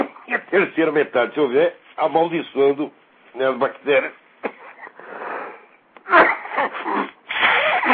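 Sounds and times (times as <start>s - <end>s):
speech: 0.3s - 4.2s
person sneezing: 4.4s - 7.9s
person sniffling: 4.4s - 7.9s.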